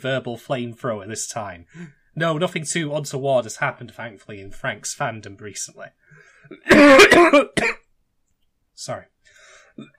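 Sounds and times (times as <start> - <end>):
speech: 0.0 - 7.8, 8.8 - 9.1, 9.8 - 9.9
harsh coughs: 6.5 - 7.8.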